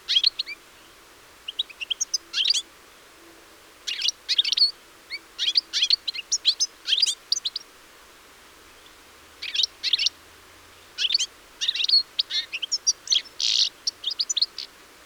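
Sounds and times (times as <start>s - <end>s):
European Goldfinch Carduelis carduelis calling: 0.1s - 0.6s, 1.5s - 2.6s, 5.4s - 7.6s, 9.4s - 10.1s, 11.0s - 14.7s.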